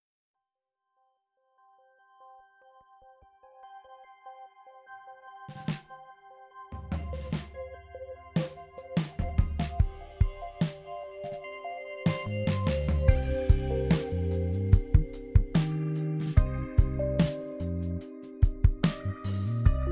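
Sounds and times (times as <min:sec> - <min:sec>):
drum kit: 0:06.8 - 0:07.7, 0:08.4 - 0:11.4, 0:12.1 - 0:19.8.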